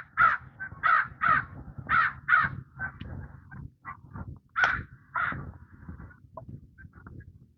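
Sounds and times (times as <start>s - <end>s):
crow cawing: 0.0s - 2.6s, 4.6s - 5.4s.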